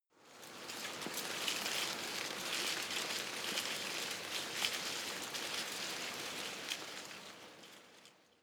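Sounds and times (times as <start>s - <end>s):
small tree leaves rustling very softly: 0.4s - 7.9s.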